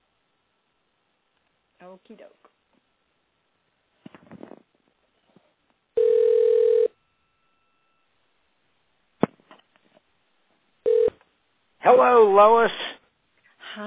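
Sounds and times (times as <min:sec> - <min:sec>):
speech: 0:01.8 - 0:02.6, 0:11.9 - 0:12.8
steady electronic telephone tone: 0:06.0 - 0:08.1, 0:10.8 - 0:11.2.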